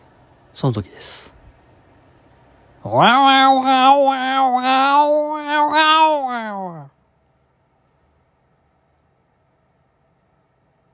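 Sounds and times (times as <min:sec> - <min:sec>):
speech: 0:00.6 - 0:01.4, 0:02.8 - 0:06.9
human voice imitating a cat's drawn-out threatening wailing yowl: 0:02.8 - 0:07.0.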